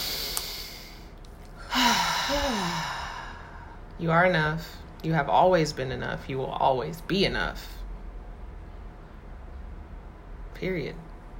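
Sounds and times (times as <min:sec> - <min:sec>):
deep breath taken during a guided breathing pause: 0:00.0 - 0:03.8
faint voiced sigh: 0:00.0 - 0:03.8
speech: 0:04.0 - 0:07.8, 0:10.6 - 0:11.0.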